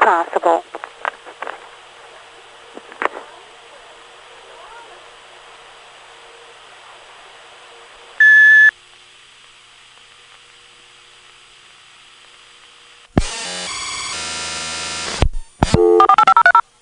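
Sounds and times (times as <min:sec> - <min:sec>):
faint hiss: 0:00.0 - 0:13.2
speech: 0:00.1 - 0:00.9
answering machine record tone beep: 0:08.2 - 0:08.7, 0:15.7 - 0:16.6.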